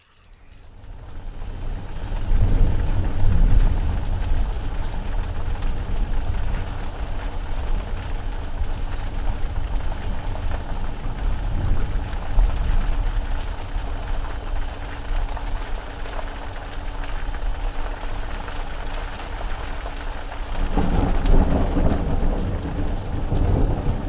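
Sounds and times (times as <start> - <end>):
heavy rain during a thunderstorm heard from inside an Egyptian temple: 0.0 - 24.0
deep thunder rumbles during a thunderstorm: 0.7 - 14.9, 20.5 - 24.0.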